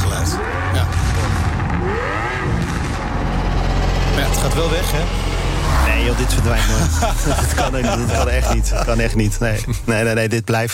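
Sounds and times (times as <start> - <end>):
powerful V12 car engine revving: 0.0 - 10.2
speech: 4.6 - 5.2, 6.0 - 10.7
laughter: 6.0 - 10.2.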